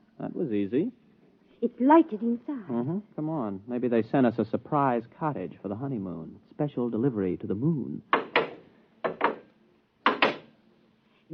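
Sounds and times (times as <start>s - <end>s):
speech: 0.2s - 1.0s, 1.6s - 8.2s
wooden door banging shut with a heavy thud: 8.2s - 10.5s.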